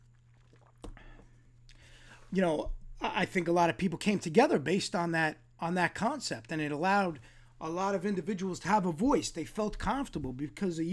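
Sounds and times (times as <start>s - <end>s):
quick sip and slurp of coffee: 0.0s - 2.0s
low steady hum: 0.0s - 10.9s
speech: 2.3s - 10.9s.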